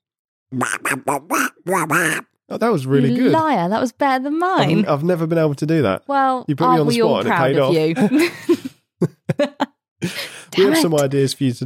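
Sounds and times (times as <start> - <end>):
speech: 0.5 - 9.1, 10.0 - 11.6
person imitating a cartoon duck voice with quacky gibberish: 0.6 - 2.4
laughter: 7.6 - 11.0.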